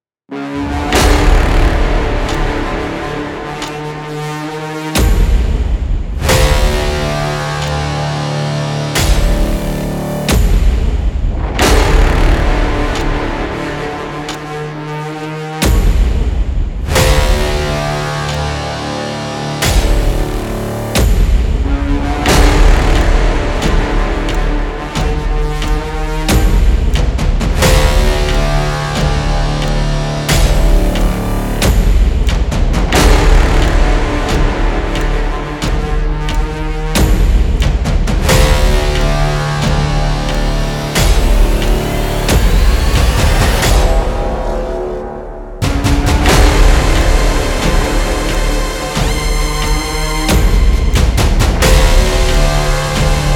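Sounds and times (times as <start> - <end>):
scary background music: 0.3 - 53.3.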